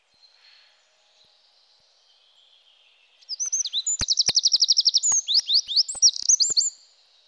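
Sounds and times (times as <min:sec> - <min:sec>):
Eurasian wren singing: 0:03.2 - 0:06.8.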